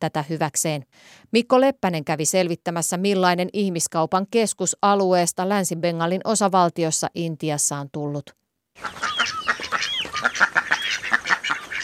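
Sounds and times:
speech: 0:00.0 - 0:09.4
flock of poultry cackling and honking in a pen at feeding: 0:08.8 - 0:11.8.

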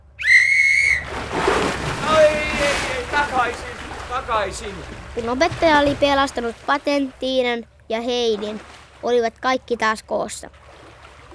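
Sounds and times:
sharp steady whistle blast: 0:00.2 - 0:01.1
water splashing and sloshing: 0:00.8 - 0:11.3
speech: 0:04.3 - 0:10.6.

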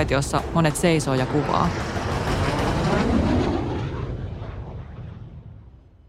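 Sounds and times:
speech: 0:00.0 - 0:02.0
military jets roaring low overhead past a spectator grandstand: 0:00.0 - 0:06.0.

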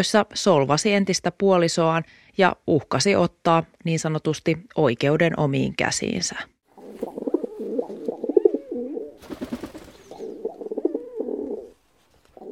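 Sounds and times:
speech: 0:00.0 - 0:07.2
pet pigeon cooing in owner's lap in an apartment: 0:06.8 - 0:12.4.

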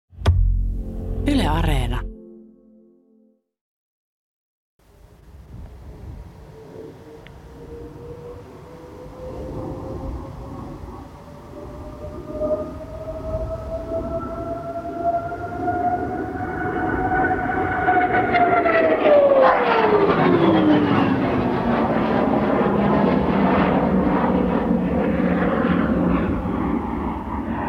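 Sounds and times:
speech: 0:01.2 - 0:02.1
propeller fighter aircraft taking off and climbing: 0:05.8 - 0:27.6.

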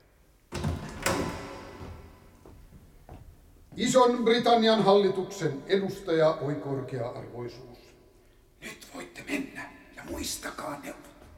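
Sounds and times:
door latch clunk: 0:00.5 - 0:02.2
door opening: 0:00.5 - 0:02.6
speech: 0:03.8 - 0:07.9, 0:10.1 - 0:11.1.

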